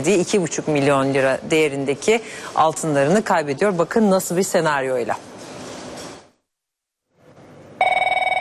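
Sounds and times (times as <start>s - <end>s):
speech: 0.0s - 5.3s
rustling noise: 5.1s - 6.4s
telephone bell ringing: 7.8s - 8.3s.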